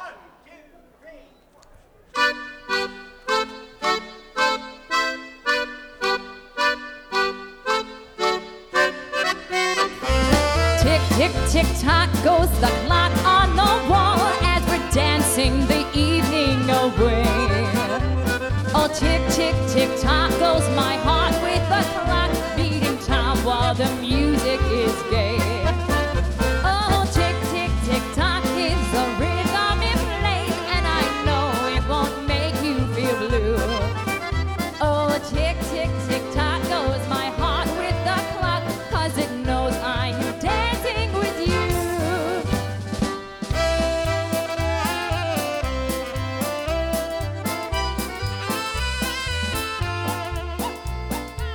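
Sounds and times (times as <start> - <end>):
polka music: 2.1 - 51.5.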